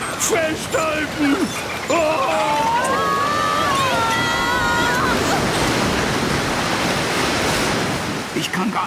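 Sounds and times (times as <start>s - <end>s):
speech: 0.2s - 2.6s, 8.6s - 8.8s
large ocean wave crashing over a small boat at sea: 0.5s - 8.6s
high wavering wail: 1.9s - 5.5s.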